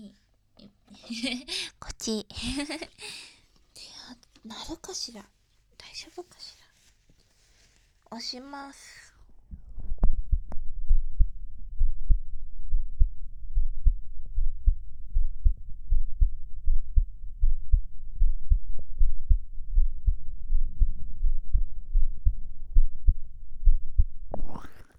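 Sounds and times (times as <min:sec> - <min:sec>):
speech: 0:01.1 - 0:03.3, 0:04.4 - 0:05.4, 0:06.0 - 0:06.6, 0:08.1 - 0:09.0
rustle: 0:03.6 - 0:10.1
fast heartbeat: 0:09.5 - 0:24.7.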